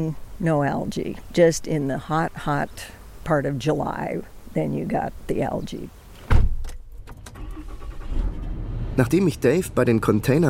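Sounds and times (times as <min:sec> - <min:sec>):
speech: 0:00.0 - 0:06.0, 0:09.0 - 0:10.4
dull thump: 0:06.2 - 0:07.3
rental car driving downstream through narrow basalt mountain slopes: 0:07.3 - 0:10.4.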